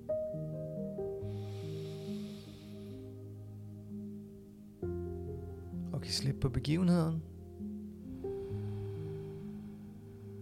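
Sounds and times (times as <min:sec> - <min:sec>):
calm sustained ambient music tones: 0:00.0 - 0:10.3
slow deep breath in a guided meditation: 0:01.2 - 0:03.3, 0:08.0 - 0:10.3
speech: 0:06.0 - 0:07.3.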